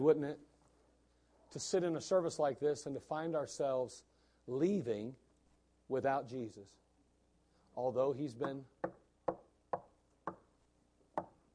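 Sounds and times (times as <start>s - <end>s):
speech: 0.0s - 0.5s, 1.5s - 5.2s, 5.9s - 6.8s, 7.8s - 9.0s
hollow knocking on a door: 8.4s - 10.4s.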